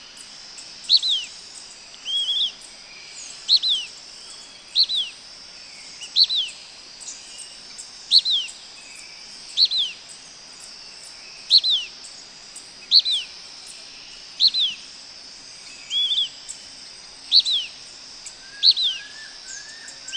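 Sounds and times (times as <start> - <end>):
high insect buzz: 0.0 - 20.1
Blackish pewee calling: 0.8 - 1.3, 2.0 - 2.6, 3.4 - 3.9, 4.7 - 5.2, 6.0 - 6.6, 8.1 - 8.5, 9.5 - 10.0, 11.5 - 12.0, 12.8 - 13.3, 14.4 - 14.9, 15.8 - 16.4, 17.3 - 20.1.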